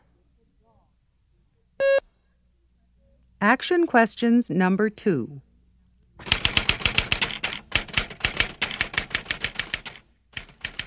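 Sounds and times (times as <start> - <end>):
speech: 3.4 - 5.5
typewriter keys clattering: 6.2 - 10.8.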